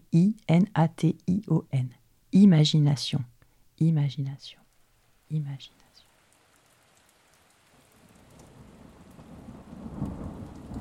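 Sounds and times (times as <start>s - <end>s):
speech: 0.1s - 4.6s, 5.3s - 5.8s
steady rain falling: 4.0s - 10.7s.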